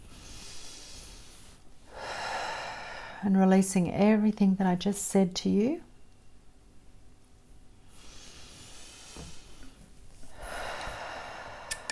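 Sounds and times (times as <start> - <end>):
deep breathing: 0.0 - 3.2, 7.8 - 11.9
speech: 3.2 - 5.9.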